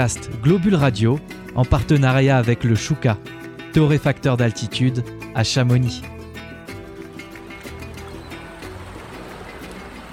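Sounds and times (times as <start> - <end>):
speech: 0.0 - 6.2
boat engine drone crossing the Atlantic Ocean: 6.6 - 10.1
churning rushing water from a boat crossing the Atlantic Ocean: 6.8 - 10.1.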